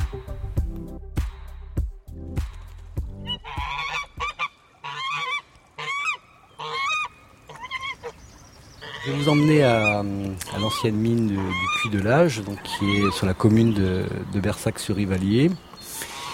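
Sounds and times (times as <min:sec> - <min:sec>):
geese and ducks honking: 0:03.2 - 0:08.2, 0:08.8 - 0:14.3, 0:16.0 - 0:16.3
speech: 0:09.0 - 0:15.7.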